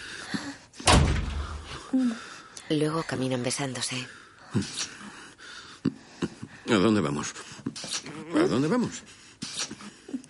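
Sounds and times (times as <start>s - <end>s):
door closing with a heavy thud: 0.8s - 1.9s
speech: 2.0s - 5.1s, 6.7s - 9.2s.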